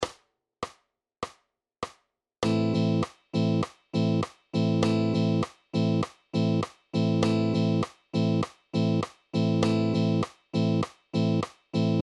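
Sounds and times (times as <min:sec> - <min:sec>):
rhythm guitar exercises: 0:02.4 - 0:12.0.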